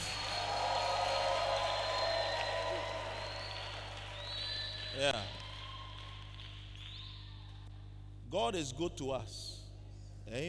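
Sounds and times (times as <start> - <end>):
audience shouts and whoops: 0.0 - 6.2
audience clapping before preaching: 0.0 - 7.0
speech: 5.0 - 5.4, 8.3 - 9.5, 10.3 - 10.4.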